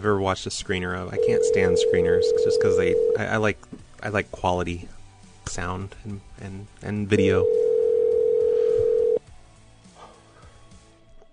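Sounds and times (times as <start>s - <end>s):
speech: 0.0s - 7.6s
telephone dial tone on a line before a call: 1.2s - 3.3s, 7.4s - 9.2s.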